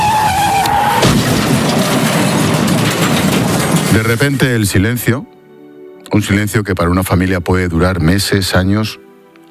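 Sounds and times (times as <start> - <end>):
car braking hard with a sharp tire screech: 0.0 - 3.7
loud broad rumbling crash-like noise: 0.1 - 5.0
speech: 4.0 - 5.4, 6.1 - 9.0.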